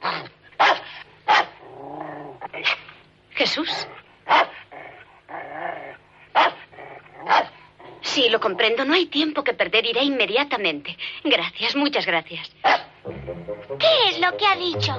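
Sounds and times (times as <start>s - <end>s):
small dog growling: 0.0s - 0.3s, 1.4s - 3.0s, 3.6s - 8.6s
small dog barking: 0.0s - 1.6s, 4.3s - 4.7s, 6.3s - 7.6s, 12.6s - 13.0s
speech: 3.4s - 4.6s, 8.2s - 14.9s.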